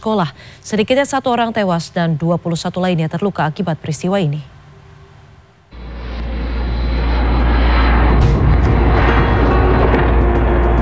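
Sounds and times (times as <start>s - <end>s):
speech: 0.0s - 4.6s
Russian attack drone engine buzzing overhead over Kyiv Ukraine: 5.7s - 10.8s.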